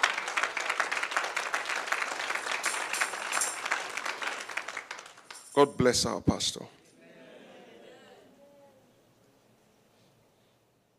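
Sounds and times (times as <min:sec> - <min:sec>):
church crowd applauding: 0:00.0 - 0:05.9
speech: 0:05.6 - 0:06.8.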